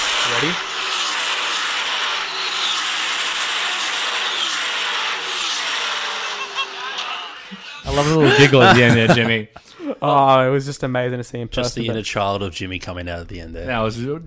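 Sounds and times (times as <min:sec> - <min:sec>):
Formula One cars racing past: 0:00.2 - 0:08.7
speech: 0:00.4 - 0:00.7, 0:08.0 - 0:14.2
laughter: 0:06.1 - 0:10.2.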